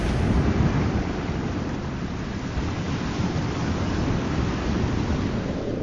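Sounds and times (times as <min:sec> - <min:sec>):
ocean waves crashing: 0:00.0 - 0:05.7.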